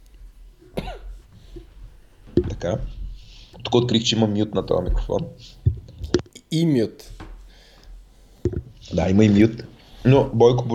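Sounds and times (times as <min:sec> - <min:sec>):
person giving a throat cough: 0:00.8 - 0:01.1
speech: 0:02.4 - 0:03.0, 0:03.7 - 0:05.6, 0:06.5 - 0:07.2, 0:08.9 - 0:10.7.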